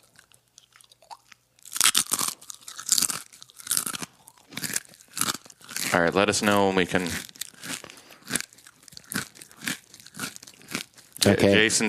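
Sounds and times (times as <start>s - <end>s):
crisp chip being bitten and chewed: 0.0s - 11.3s
speech: 6.0s - 7.3s, 11.2s - 11.8s.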